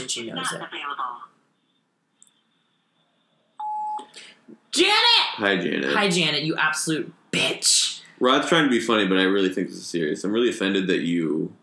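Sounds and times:
speech: 0.1 - 1.4, 4.5 - 11.6
phone voicemail beep: 3.6 - 4.1.

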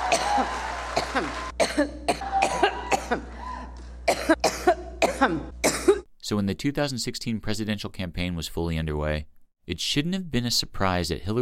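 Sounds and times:
woman's violent coughing fit: 0.1 - 6.1
speech: 1.2 - 2.0, 6.3 - 11.3.

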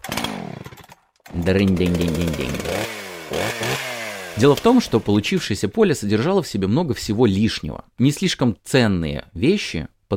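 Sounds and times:
chainsaw sputtering and revving: 0.0 - 5.6
speech: 1.4 - 2.8, 4.4 - 10.1.

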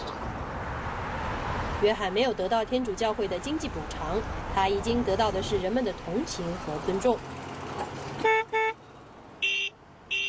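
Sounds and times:
street noise: 0.0 - 10.2
speech: 1.8 - 8.4
horns of passing cars honking to salute a protester: 8.2 - 8.8, 9.4 - 10.2.

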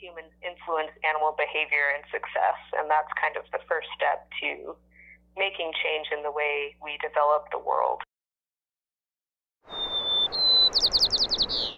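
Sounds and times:
speech: 0.0 - 8.0
bird singing whistled notes, chirps and a trill: 9.7 - 11.7.

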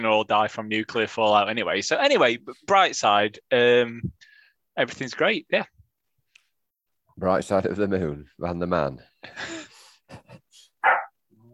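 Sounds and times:
speech: 0.0 - 4.2, 4.8 - 5.8, 7.2 - 11.0
dog barking: 10.8 - 11.2.

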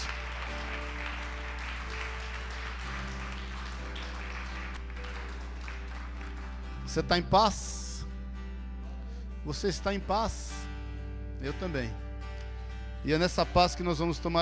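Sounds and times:
audience applauding: 0.0 - 7.0
speech: 6.9 - 7.8, 9.5 - 10.6, 11.4 - 12.0, 13.0 - 14.4.

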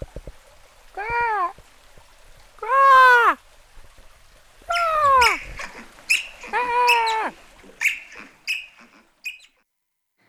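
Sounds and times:
person imitating an otter's call to lure out an otter: 1.0 - 1.6, 2.6 - 3.4, 4.7 - 9.5.

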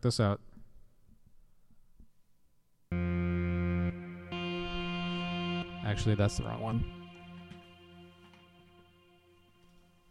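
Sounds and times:
speech: 0.0 - 0.5, 5.9 - 7.0
synthesizer tone with reverb and delay: 2.9 - 10.0.

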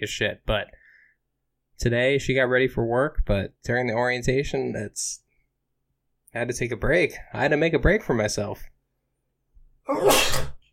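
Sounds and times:
speech: 0.0 - 0.8, 1.8 - 5.2, 6.3 - 8.7, 9.9 - 10.5
person sneezing: 9.9 - 10.7.

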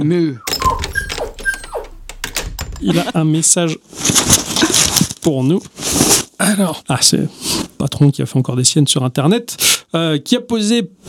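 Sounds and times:
speech: 0.0 - 0.9, 2.8 - 11.0
dog whining: 0.4 - 2.0
short squeaky rattling sounds: 0.4 - 3.1.

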